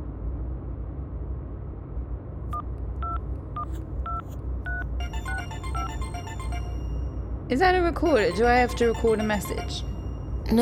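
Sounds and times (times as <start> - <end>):
steady low rumble: 0.0 - 10.6
short electronic beeps of a phone calling signal: 4.1 - 7.2, 8.1 - 10.6
rapid busy warbling phone tone: 5.0 - 10.6
speech: 7.5 - 9.9.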